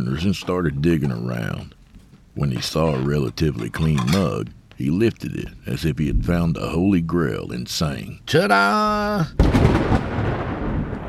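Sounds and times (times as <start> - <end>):
speech: 0.0 - 1.8, 2.4 - 10.1
floor-shaking thunder clap after lightning: 9.4 - 11.0.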